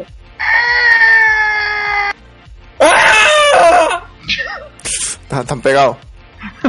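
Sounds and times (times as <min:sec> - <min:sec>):
speech: 0:00.0 - 0:00.2, 0:05.4 - 0:06.6
person screaming loudly: 0:00.4 - 0:02.2, 0:02.8 - 0:04.7.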